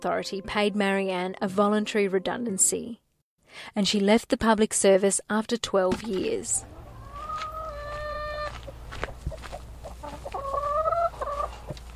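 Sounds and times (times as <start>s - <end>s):
speech: 0.0s - 6.7s
flock of hens clucking and squawking: 6.6s - 11.9s.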